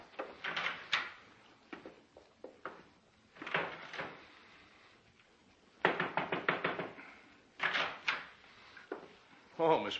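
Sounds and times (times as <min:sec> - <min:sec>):
wooden door opening and closing: 0:00.1 - 0:01.2, 0:02.6 - 0:04.5, 0:05.8 - 0:09.1
speech: 0:09.6 - 0:09.9.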